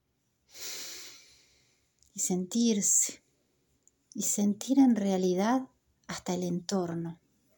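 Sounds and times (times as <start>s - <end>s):
long airy breath drawn in close to the microphone: 0.5s - 1.9s
speech: 2.2s - 3.2s, 4.2s - 7.2s.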